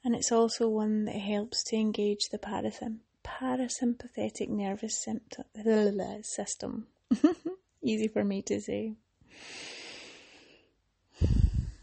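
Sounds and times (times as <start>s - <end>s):
speech: 0.2s - 9.7s
slow restful breathing of the kind used during sleep: 9.3s - 11.8s.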